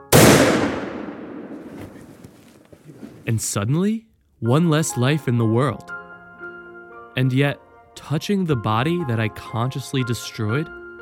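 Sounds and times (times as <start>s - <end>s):
gunshot fired while hunting an animal in the woods: 0.0s - 2.4s
speech: 3.3s - 6.0s, 7.2s - 10.8s.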